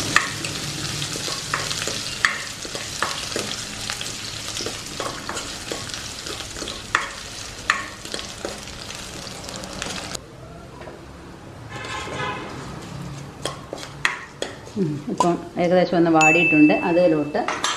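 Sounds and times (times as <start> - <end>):
chopped ginger sizzling in a hot pan for mango curry: 0.0 - 10.2
speech: 14.8 - 17.6.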